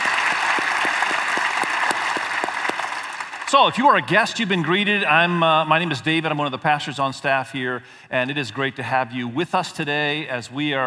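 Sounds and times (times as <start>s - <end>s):
church audience applause welcoming people to a service: 0.0s - 5.6s
speech: 3.5s - 10.8s.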